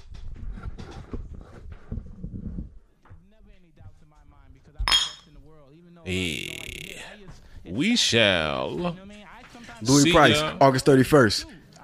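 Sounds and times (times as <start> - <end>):
glasses clinking in a toast: 4.9 - 5.3
group of men chatting: 6.0 - 11.8
speech: 6.1 - 6.6, 7.7 - 9.1, 9.8 - 11.8.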